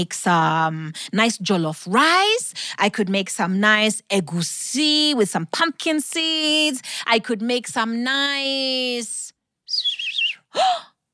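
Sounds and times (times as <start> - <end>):
speech: 0.0 - 9.3, 10.5 - 10.9
bird chirping with a warbling call: 9.7 - 10.4.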